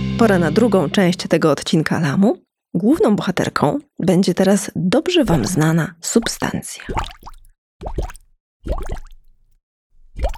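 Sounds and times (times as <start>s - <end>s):
speech: 0.2s - 9.1s, 10.2s - 10.3s
water drop plops with rising bubbly tone: 5.3s - 9.2s, 10.2s - 10.3s.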